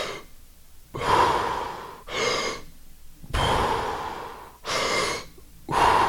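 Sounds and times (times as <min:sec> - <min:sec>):
forceful breathy inhalations of hope breathing technique: 0:01.0 - 0:02.7, 0:03.3 - 0:06.0.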